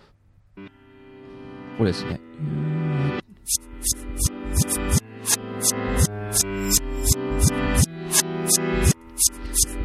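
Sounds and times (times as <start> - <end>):
music played backwards: 0.6 - 9.8
speech: 1.8 - 2.6, 3.5 - 9.8.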